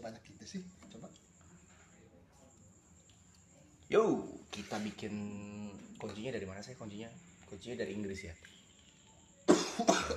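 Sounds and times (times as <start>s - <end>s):
speech: 0.1s - 0.8s, 3.9s - 8.6s
person coughing harshly: 9.5s - 10.1s.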